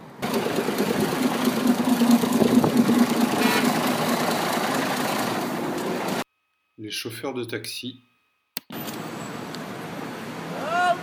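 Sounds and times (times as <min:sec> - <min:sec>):
cars driving past on a city street in Almaty in cool weather: 0:00.0 - 0:06.2, 0:08.7 - 0:11.0
continuous engine rumble and low hum of street traffic: 0:00.0 - 0:06.2
passing vehicle on a city street: 0:00.0 - 0:06.2, 0:08.8 - 0:11.0
speech: 0:06.9 - 0:08.1.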